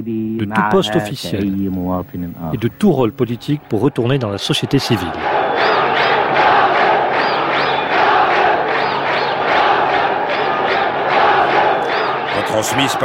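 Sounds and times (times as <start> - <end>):
speech: 0.0 - 5.7, 12.6 - 13.0
large crowd protesting and shouting: 3.7 - 13.0.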